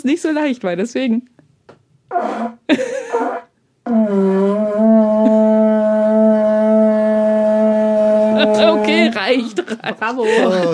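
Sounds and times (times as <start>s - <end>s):
speech: 0.0s - 1.4s, 2.1s - 5.1s, 8.8s - 10.7s
vuvuzela blowing: 2.1s - 9.2s
laughter: 2.7s - 3.2s, 8.4s - 10.7s.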